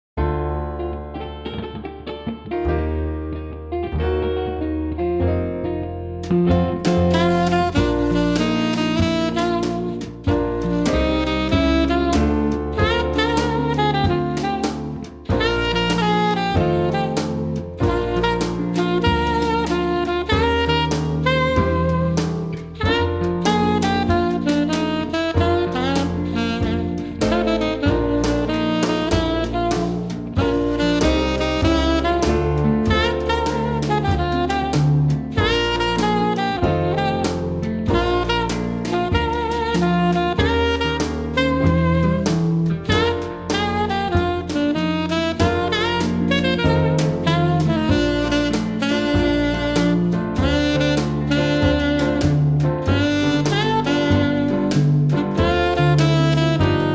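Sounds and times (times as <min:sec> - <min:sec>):
traditional jazz music: 0:00.2 - 0:56.9.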